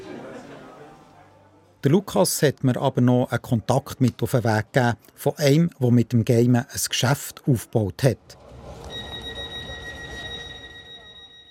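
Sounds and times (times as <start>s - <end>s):
speech: 1.8s - 8.4s
train shrill high-pitched tone: 8.9s - 11.4s.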